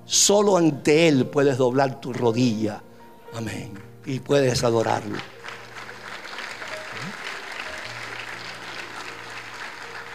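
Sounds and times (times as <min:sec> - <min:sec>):
speech: 0:00.1 - 0:05.4
large audience applauding: 0:04.5 - 0:10.1.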